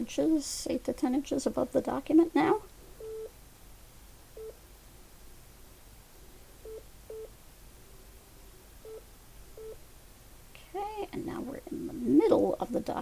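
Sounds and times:
speech: 0.0s - 2.7s
quiet hiss: 0.0s - 13.0s
short electronic phone app guidance beeps: 3.0s - 3.3s, 6.6s - 7.3s, 9.6s - 9.8s.

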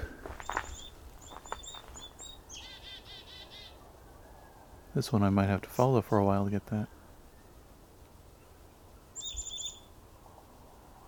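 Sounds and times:
chickadee calling outdoors: 0.4s - 3.8s, 9.2s - 9.9s
speech: 5.0s - 7.0s.

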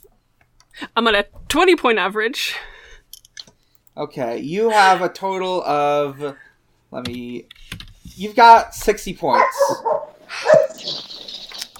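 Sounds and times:
speech: 0.9s - 2.7s, 4.0s - 7.6s, 8.2s - 10.5s
dog barking: 9.3s - 10.8s.

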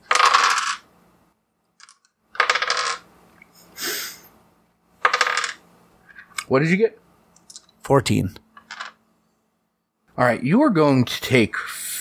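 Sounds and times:
many dice clattering across a hard tabletop during a game: 0.0s - 0.9s, 1.8s - 3.1s, 5.0s - 6.4s, 8.6s - 9.0s
speech: 6.5s - 7.0s, 7.9s - 8.4s, 10.2s - 11.8s.

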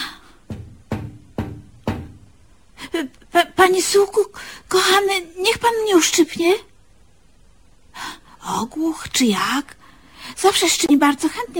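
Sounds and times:
knocking on a window: 0.4s - 2.4s
speech: 3.0s - 6.7s, 8.5s - 9.8s, 10.4s - 11.5s.

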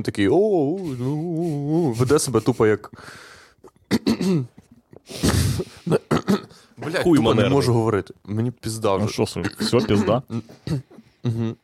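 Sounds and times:
speech: 0.0s - 3.4s, 4.0s - 11.6s
wet cough: 3.9s - 6.6s, 9.4s - 11.0s.

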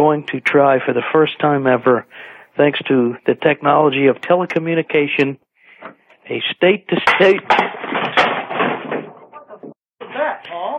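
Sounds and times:
speech: 0.0s - 8.0s
chair breaking and collapsing under a person: 7.0s - 9.8s.

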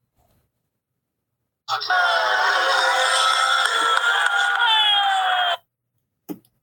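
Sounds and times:
large grandstand crowd cheering during second practice session: 1.7s - 5.6s.

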